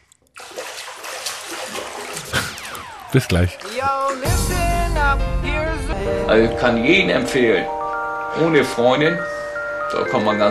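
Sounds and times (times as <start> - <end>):
water splashing and rushing: 0.4 - 3.7
speech: 3.1 - 7.8, 8.4 - 9.3, 9.9 - 10.4.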